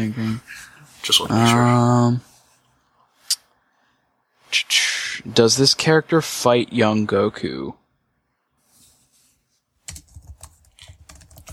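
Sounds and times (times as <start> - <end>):
speech: 0.0 - 2.3, 4.5 - 7.8
rapid clattering keystrokes on a computer keyboard: 9.9 - 11.5.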